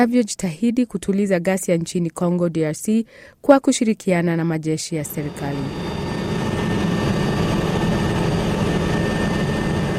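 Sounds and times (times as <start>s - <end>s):
speech: 0.0s - 6.0s
United Nations aircraft engine roar carrying wounded people: 5.0s - 9.9s.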